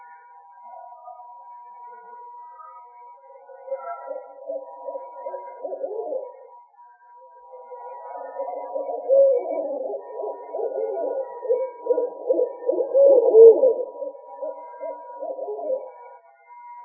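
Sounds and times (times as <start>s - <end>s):
owl hooting: 3.4s - 6.5s, 7.5s - 16.2s
speech: 3.8s - 6.4s.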